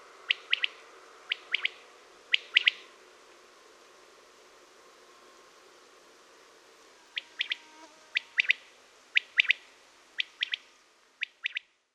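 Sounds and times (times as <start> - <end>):
common quail calling: 0.3 - 2.8, 7.2 - 11.7.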